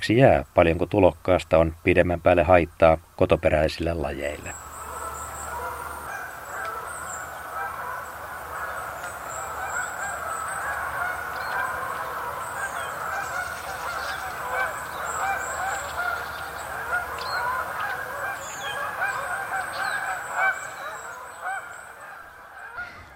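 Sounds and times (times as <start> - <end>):
speech: 0.0 - 4.6
large flock of Canada geese honking: 4.0 - 23.1.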